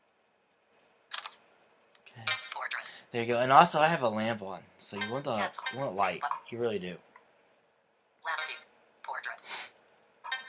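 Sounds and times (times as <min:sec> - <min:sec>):
phone camera shutter click: 0:01.1 - 0:01.4
speech: 0:03.1 - 0:07.1.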